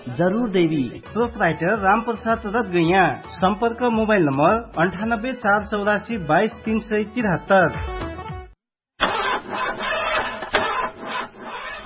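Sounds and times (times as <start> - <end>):
speech: 0.0 - 8.0
vehicle engine cranking but failing to start from a battery problem: 9.0 - 11.8.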